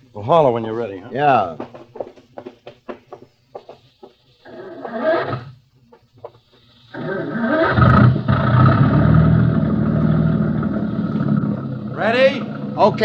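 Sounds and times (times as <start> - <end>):
speech: 0.2 - 1.8, 12.8 - 13.0
boat engine cranking, starting and running: 6.9 - 13.0.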